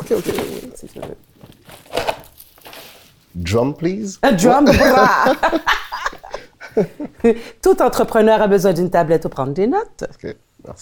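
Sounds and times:
gift wrapping paper crinkling and tearing as a present is opened: 0.0s - 3.4s
speech: 0.1s - 2.1s, 3.4s - 5.8s, 6.8s - 10.8s
laughter: 4.2s - 7.4s.

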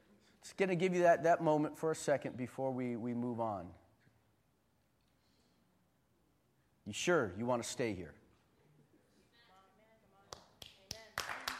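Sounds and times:
speech: 0.4s - 3.8s, 6.9s - 8.2s
woman clapping hands: 10.3s - 11.5s.

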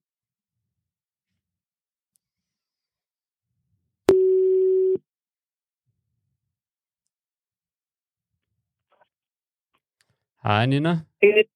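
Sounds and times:
telephone ringback tone while calling: 4.1s - 5.0s
speech: 10.4s - 11.5s.

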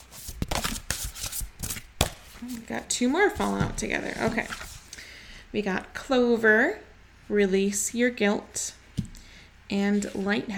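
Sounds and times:
deck of oracle cards being shuffled: 0.0s - 2.7s
speech: 2.4s - 4.7s, 5.5s - 8.8s, 9.7s - 10.5s.

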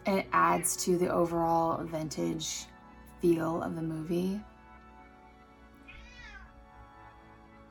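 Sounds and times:
speech: 0.1s - 4.5s
single drawn-out cat meow: 5.9s - 6.5s.

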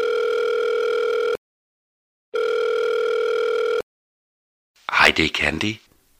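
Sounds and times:
electronic ringback tones from an outgoing phone call: 0.0s - 1.4s, 2.4s - 3.8s
speech: 5.2s - 5.8s.

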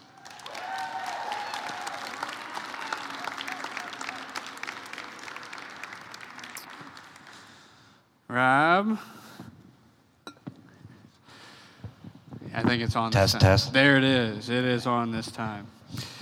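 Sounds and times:
audience applauding: 0.0s - 7.9s
speech: 8.4s - 9.2s, 12.6s - 16.0s.

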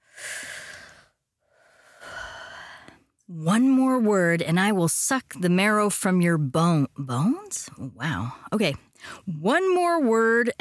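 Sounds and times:
deep breath in and out: 0.0s - 3.1s
speech: 3.3s - 10.5s.

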